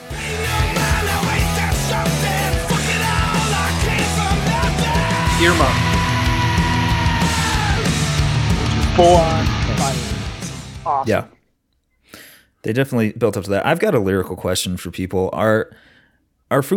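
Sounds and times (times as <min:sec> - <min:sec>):
loud dense hard rock music: 0:00.0 - 0:11.2
heavy distorted guitars: 0:00.0 - 0:11.3
harsh yelling vocal: 0:00.2 - 0:10.2
pounding drums: 0:02.6 - 0:10.9
speech: 0:05.4 - 0:05.9, 0:09.0 - 0:09.5, 0:11.0 - 0:11.3, 0:12.6 - 0:15.9, 0:16.5 - 0:16.7.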